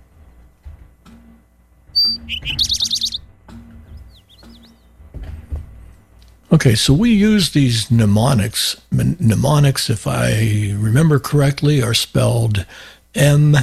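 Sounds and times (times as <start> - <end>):
Eastern towhee song: 2.0 - 3.2
soft bird chips: 2.0 - 3.2
speech: 2.1 - 2.8, 6.5 - 13.6.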